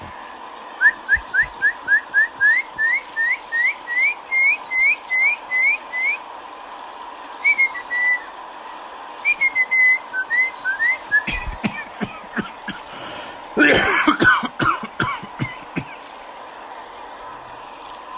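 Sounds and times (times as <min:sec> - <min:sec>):
low steady hum: 0:00.0 - 0:18.1
person whistling imitating a nightingale's song: 0:00.8 - 0:06.2, 0:07.4 - 0:08.3, 0:09.2 - 0:11.4
harsh raspy coughs from shortness of breath: 0:11.2 - 0:12.8, 0:13.6 - 0:16.0.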